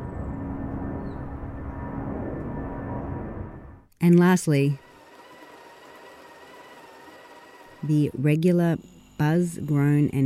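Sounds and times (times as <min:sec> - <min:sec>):
planes flying overhead with a whirring roar: 0:00.0 - 0:03.9
speech: 0:04.0 - 0:04.8, 0:07.8 - 0:10.2.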